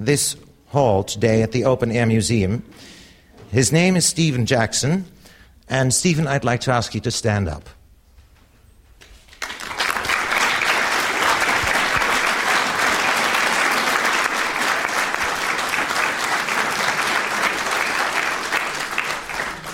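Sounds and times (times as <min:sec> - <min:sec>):
speech: 0:00.0 - 0:07.8
audience applause in a hall: 0:09.3 - 0:19.7.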